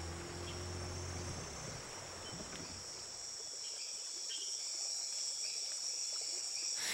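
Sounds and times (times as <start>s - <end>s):
low boat engine hum: 0.0s - 3.6s
high-pitched drone of insects in dense forest: 0.0s - 6.9s.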